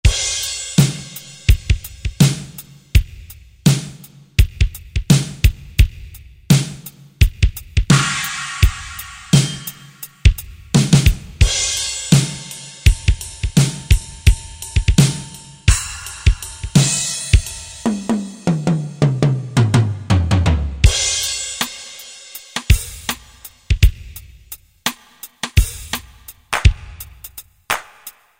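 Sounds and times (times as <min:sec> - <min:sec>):
GM drum kit on Korg 05RW: 0:00.0 - 0:28.3.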